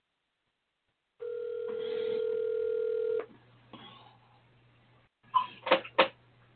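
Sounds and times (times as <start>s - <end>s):
steady telephone tone on an outgoing call: 1.2s - 3.3s.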